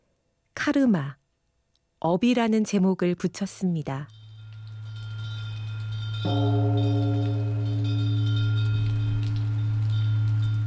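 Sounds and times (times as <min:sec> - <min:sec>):
speech: 0:00.6 - 0:01.2, 0:02.0 - 0:04.2, 0:06.2 - 0:07.4
deep temple bell striking: 0:04.1 - 0:10.6
rain: 0:04.1 - 0:10.6
small wind chimes tinkling: 0:04.1 - 0:10.6
wind: 0:04.4 - 0:10.6.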